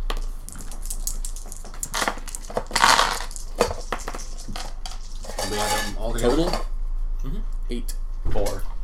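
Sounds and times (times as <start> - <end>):
dice rolled for a tabletop role-playing game clattering: 0.1 - 6.6
speech: 5.5 - 8.7.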